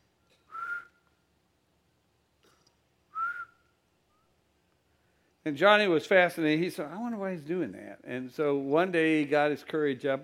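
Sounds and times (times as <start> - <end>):
short human whistles: 0.4 - 1.1, 3.1 - 4.4
speech: 5.4 - 10.2.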